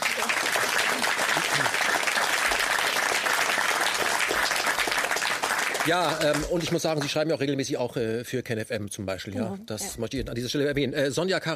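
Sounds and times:
audience applause: 0.0s - 7.2s
speech: 5.8s - 11.5s.

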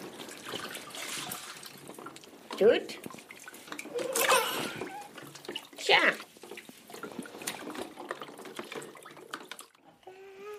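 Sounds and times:
running water splashing while washing a child's face: 0.0s - 9.8s
speech: 2.6s - 3.1s.

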